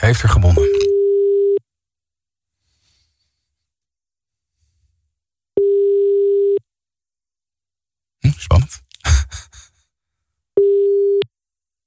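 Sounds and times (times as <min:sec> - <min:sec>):
speech: 0:00.0 - 0:01.0
ringback tone on an outgoing call: 0:00.6 - 0:01.6, 0:05.6 - 0:06.6, 0:10.6 - 0:11.2.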